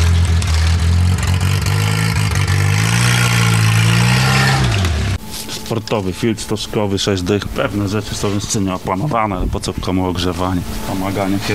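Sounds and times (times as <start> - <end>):
car engine revving through a shortened exhaust: 0.0 - 5.2
speech: 5.7 - 11.5.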